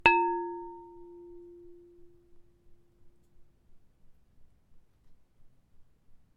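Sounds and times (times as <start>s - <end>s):
chiming pottery: 0.0s - 2.1s.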